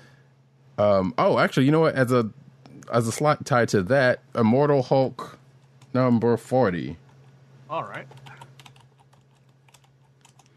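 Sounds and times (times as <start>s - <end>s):
faint steady low hum: 0.0s - 10.5s
speech: 0.8s - 7.0s, 7.7s - 8.2s
rapid typing on a computer keyboard: 8.0s - 10.5s.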